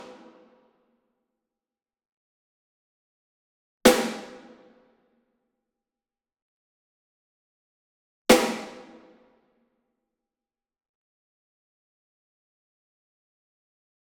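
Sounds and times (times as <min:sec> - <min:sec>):
snare drum rim hit on jarrah block: 0:03.9 - 0:04.4, 0:08.3 - 0:09.0.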